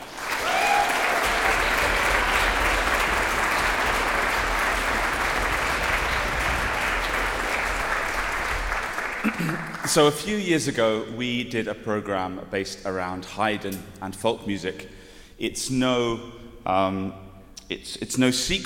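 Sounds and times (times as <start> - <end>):
large concert audience applauding musicians: 0.0 - 10.2
cheers and whistles from concert audience: 0.2 - 2.8
speech: 10.0 - 18.6.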